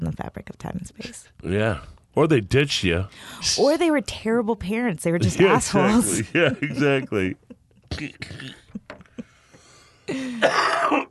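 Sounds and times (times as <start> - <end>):
speech: 0.2 - 8.6, 10.1 - 11.0
laughter: 5.3 - 7.6
loud harsh raspy cough: 7.9 - 8.8, 10.1 - 11.0
short quiet throat sounds: 7.9 - 8.8, 10.1 - 11.0.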